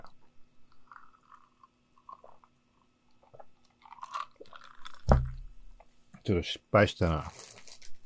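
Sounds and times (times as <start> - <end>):
wet chewing and mouth smacking while eating: 0.0 - 5.6
speech: 6.3 - 7.4.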